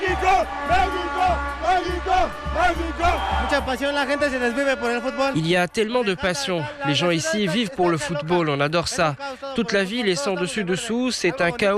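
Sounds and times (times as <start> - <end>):
football stadium crowd cheering and chanting for a goal: 0.0 - 5.7
speech: 0.2 - 11.7.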